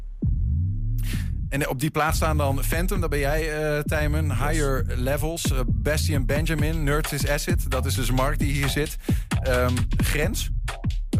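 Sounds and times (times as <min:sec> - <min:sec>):
electronic music with deep droning bass: 0:00.0 - 0:11.1
speech: 0:01.5 - 0:10.6.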